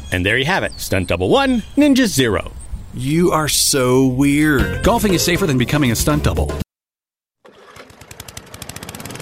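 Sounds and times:
speech: 0:00.2 - 0:06.6
lawn mower engine running: 0:07.4 - 0:09.2.

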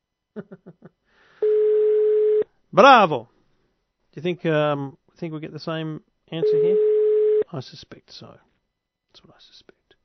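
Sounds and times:
speech: 0:00.4 - 0:01.0, 0:02.7 - 0:03.3, 0:04.2 - 0:06.9, 0:07.5 - 0:08.5, 0:09.2 - 0:09.8
telephone ringtone beeps: 0:01.4 - 0:02.4, 0:06.4 - 0:07.4.

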